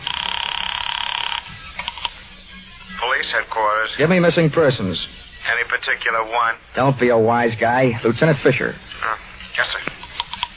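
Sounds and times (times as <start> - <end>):
telephone bell ringing with a metallic trill: 0.0 - 3.1
speech: 3.2 - 9.9.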